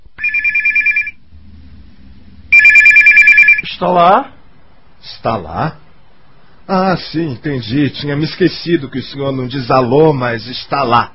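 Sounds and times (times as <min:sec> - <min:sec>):
telephone ringing with a loud high electronic trill: 0:00.2 - 0:01.2, 0:02.5 - 0:03.7
speech: 0:03.8 - 0:04.4, 0:05.0 - 0:05.8, 0:06.7 - 0:11.1.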